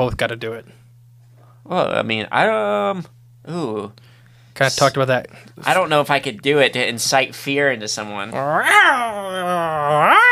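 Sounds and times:
speech: 0.0s - 0.8s, 1.6s - 10.3s
person imitating a cat's yowl: 8.4s - 10.3s.

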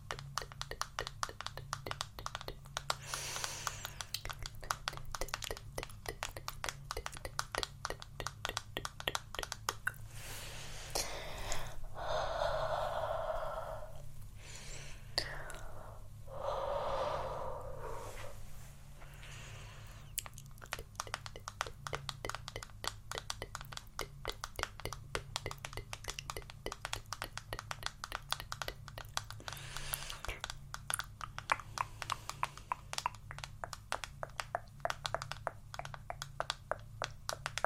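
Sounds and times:
low steady hum: 0.0s - 37.6s
rapid crisp tongue clicking close to the microphone: 0.1s - 10.0s, 15.2s - 16.0s, 20.1s - 37.6s
soft breathy mouth sounds and gasps: 2.9s - 4.5s, 9.9s - 20.8s, 27.5s - 30.6s, 31.4s - 33.2s.

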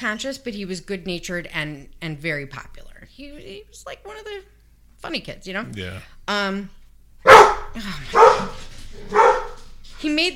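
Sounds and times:
speech: 0.0s - 6.8s, 7.7s - 9.2s, 10.0s - 10.3s
dog barking excitedly: 7.2s - 9.7s.

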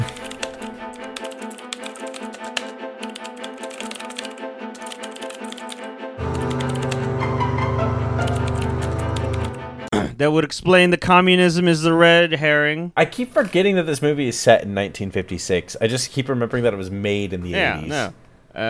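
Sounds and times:
computer keyboard typing clacks: 0.0s - 9.7s
sustained music: 0.0s - 10.0s
speech: 10.2s - 18.6s.

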